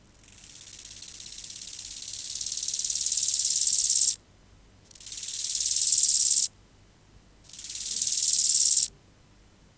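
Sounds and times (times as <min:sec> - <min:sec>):
bow-winged grasshopper Chorthippus biguttulus stridulating: 0:00.2 - 0:04.2, 0:04.9 - 0:06.5, 0:07.5 - 0:08.9.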